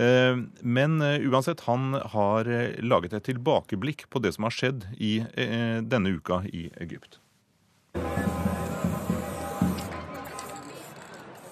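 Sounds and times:
speech: 0:00.0 - 0:07.2
murmur of voices: 0:08.0 - 0:11.5
spray paint can hissing: 0:08.0 - 0:11.5.

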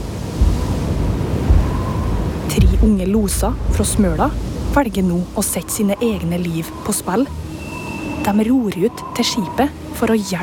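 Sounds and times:
gusts buffeting the microphone: 0:00.0 - 0:07.0
strong wind roaring in a full storm over rough sea in a fjord: 0:00.0 - 0:09.9
rough sea waves surging and crashing in a fjord: 0:00.0 - 0:10.4
speech: 0:02.8 - 0:07.4, 0:08.2 - 0:10.4.

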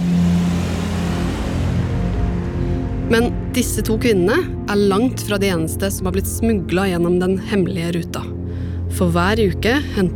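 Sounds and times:
car engine rumbling and revving: 0:00.0 - 0:04.7
speech: 0:03.1 - 0:08.3, 0:09.0 - 0:10.1.

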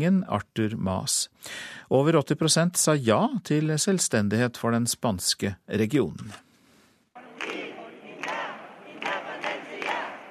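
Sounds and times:
speech: 0:00.0 - 0:06.5
large crowd clapping: 0:07.2 - 0:10.2.

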